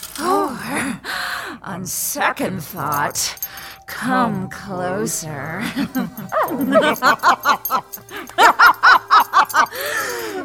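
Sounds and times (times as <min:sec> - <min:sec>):
speech: 0:01.8 - 0:09.0
laughter: 0:05.6 - 0:10.4
small female dog whining: 0:05.9 - 0:08.0.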